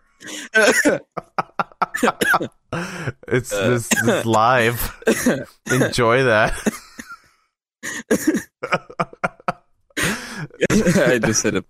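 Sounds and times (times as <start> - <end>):
man coughing: 0.2 - 1.2, 1.9 - 2.5, 3.5 - 7.1, 7.8 - 9.0, 10.0 - 11.4
speech: 0.2 - 1.4, 2.0 - 6.8, 7.8 - 9.2, 10.8 - 11.6
breathy laughter: 0.2 - 2.2, 6.5 - 11.4.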